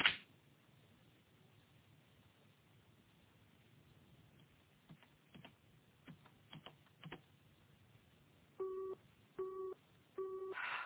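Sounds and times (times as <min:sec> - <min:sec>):
telephone busy signal beeps on an engaged line: 0:08.6 - 0:10.6.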